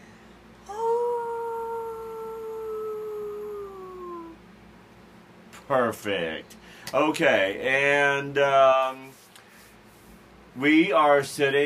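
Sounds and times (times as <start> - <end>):
person howling like a wolf: 0.7 - 4.4
speech: 5.7 - 9.1, 10.6 - 11.6.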